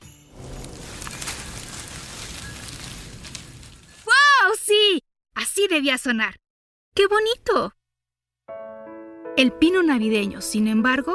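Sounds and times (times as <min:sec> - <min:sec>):
dry crackling rattle of tree branches: 0:00.3 - 0:04.5
speech: 0:05.7 - 0:06.4, 0:07.0 - 0:07.8, 0:09.4 - 0:11.1.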